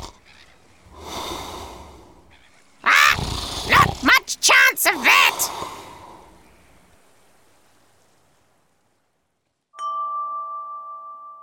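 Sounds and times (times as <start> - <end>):
soft breathing: 0.9 - 2.5, 5.2 - 6.6
loud rasping snore from a sleeping captain: 3.1 - 4.0.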